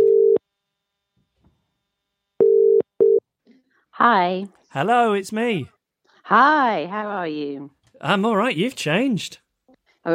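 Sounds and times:
telephone ringback tone in a double-ring pattern: 0.0 - 0.4, 2.4 - 3.2
speech: 4.0 - 9.4.

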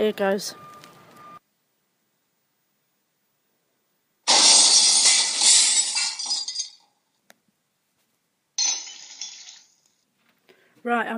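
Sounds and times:
glass shards tinkling and scattering: 4.3 - 6.9, 8.6 - 9.9
glass window smashing: 4.3 - 6.9, 8.6 - 9.8.

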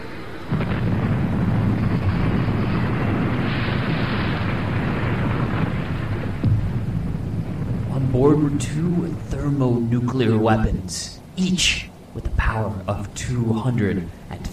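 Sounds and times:
bomber plane losing fuel crashing with heavy roar: 0.0 - 11.2
speech: 8.4 - 14.5.

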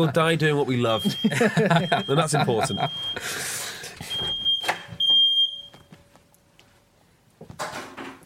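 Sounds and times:
laughter: 0.0 - 3.5
speech: 0.0 - 3.6
smoke alarm beeping: 0.9 - 3.3, 4.0 - 5.9.

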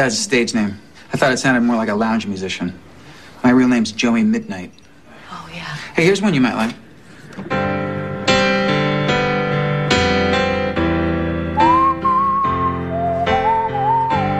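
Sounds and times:
speech: 0.0 - 4.8, 5.5 - 6.8, 7.4 - 7.7
sustained keyboard chords: 7.4 - 14.3
clear pure whistled melody: 11.2 - 14.3.

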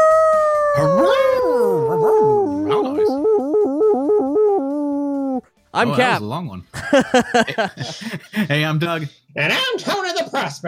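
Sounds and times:
person imitating a dog howl: 0.0 - 5.4
speech: 5.8 - 10.6
laughter: 6.8 - 8.5.

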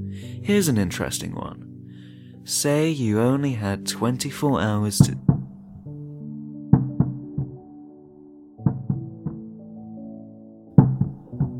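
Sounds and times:
speech: 0.4 - 1.7, 2.4 - 5.3
dull knocking from the floor above: 5.0 - 5.6, 6.8 - 7.6, 8.6 - 9.5, 10.8 - 11.5.

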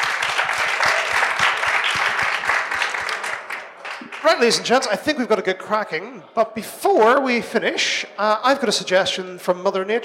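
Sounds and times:
crowd applauding: 0.0 - 4.9
speech: 4.4 - 10.0.

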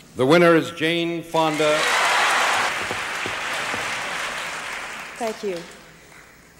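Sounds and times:
speech: 0.2 - 2.0, 5.2 - 5.8
large audience applause at awards ceremony: 1.5 - 6.3.

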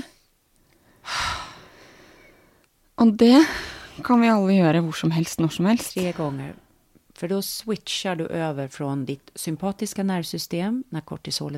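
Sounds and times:
deep breath drawn in close to the microphone: 0.8 - 2.6
speech: 3.0 - 6.6, 7.2 - 11.5.

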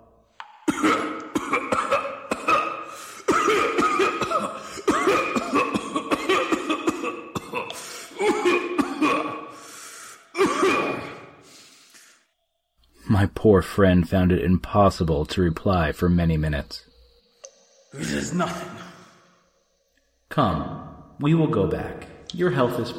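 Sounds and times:
person performing a long fit of coughing with wheezing gasps: 0.7 - 9.5, 10.3 - 11.4, 18.0 - 19.3
speech: 13.4 - 16.9, 18.0 - 18.8, 20.4 - 22.9.

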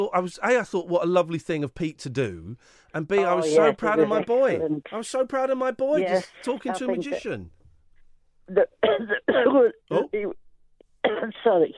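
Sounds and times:
speech: 0.0 - 7.6, 8.5 - 10.4, 11.0 - 11.7
person clearing throat: 8.8 - 10.1
person coughing harshly: 8.8 - 10.1.

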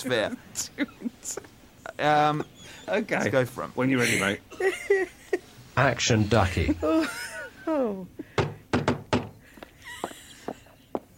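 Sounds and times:
speech: 0.0 - 5.2, 5.8 - 8.2
laughter: 3.9 - 5.6, 6.3 - 8.0
postman knocking on a door: 8.4 - 9.4.

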